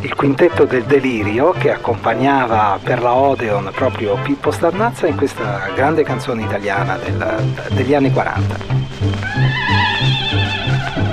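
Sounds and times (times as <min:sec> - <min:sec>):
speech: 0:00.0 - 0:09.5
low rhythmic thumps: 0:00.0 - 0:11.1
horse whinnying: 0:09.0 - 0:11.1.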